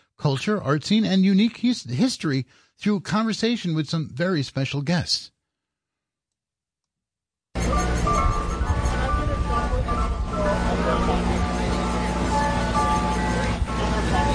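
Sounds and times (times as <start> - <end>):
speech: 0.2 - 5.4
ice cream truck tinny jingle at a summer street fair on Sullivan Street in Wurtsboro: 7.6 - 14.3
indistinct crowd chatter at a summer street fair: 7.6 - 14.3.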